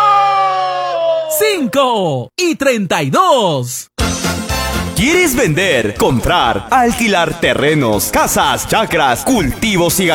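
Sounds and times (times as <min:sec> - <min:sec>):
person shouting: 0:00.0 - 0:02.2
speech: 0:01.5 - 0:03.9, 0:05.0 - 0:10.1.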